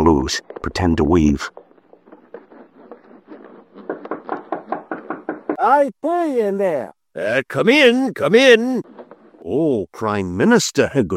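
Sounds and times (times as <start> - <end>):
speech: 0.0 - 1.6, 5.6 - 11.1
rapid knocking on a door: 4.0 - 5.6.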